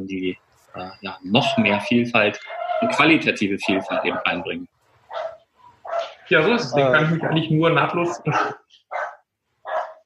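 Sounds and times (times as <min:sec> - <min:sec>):
speech: 0:00.0 - 0:05.3, 0:06.3 - 0:08.7
dog barking: 0:02.4 - 0:06.2, 0:08.2 - 0:10.0.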